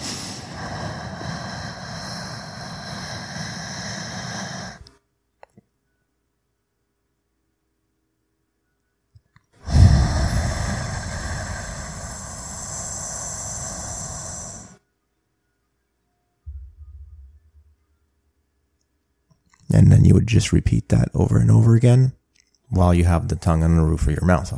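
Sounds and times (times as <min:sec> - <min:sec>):
slow box breathing inhales and exhales: 0:00.0 - 0:05.0, 0:09.6 - 0:14.8
speech: 0:19.7 - 0:24.5.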